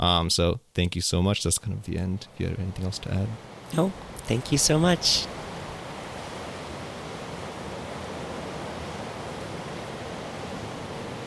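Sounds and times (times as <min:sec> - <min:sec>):
speech: 0:00.0 - 0:05.4
ocean surf roaring in the Marshall Islands: 0:02.3 - 0:11.2.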